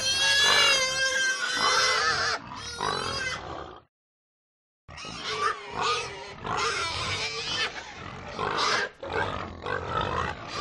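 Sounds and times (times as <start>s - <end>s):
herd of domestic pigs squealing and grunting: 0.0s - 3.9s, 4.9s - 10.5s.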